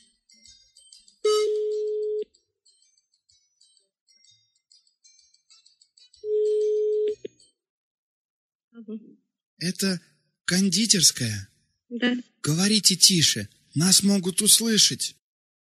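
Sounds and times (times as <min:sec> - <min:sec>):
telephone ringing tone on a line as a call goes through: 0:01.2 - 0:02.2, 0:06.3 - 0:07.3
speech: 0:08.9 - 0:15.2.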